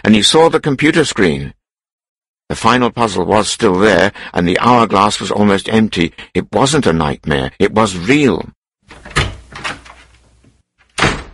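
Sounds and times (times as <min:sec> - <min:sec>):
speech: 0:00.1 - 0:01.6, 0:02.5 - 0:09.2
office door latch clunking and rattling: 0:08.9 - 0:11.3.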